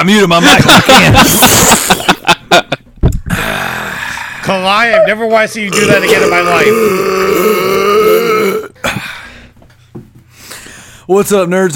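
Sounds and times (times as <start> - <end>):
speech: 0.0 - 1.9, 4.5 - 7.8, 11.1 - 11.7
long loud croaking burp: 3.3 - 4.4, 5.6 - 8.8.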